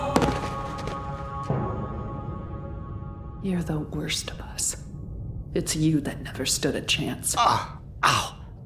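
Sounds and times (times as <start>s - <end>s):
heavy thud of a body dropping to the floor: 0.2s - 1.0s
speech: 3.4s - 4.9s, 5.6s - 8.3s.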